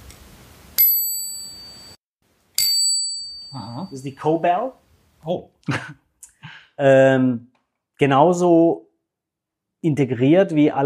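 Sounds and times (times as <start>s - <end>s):
bicycle bell ringing: 0.8s - 2.0s, 2.6s - 4.2s
speech: 3.5s - 6.0s, 6.8s - 8.8s, 9.8s - 10.8s.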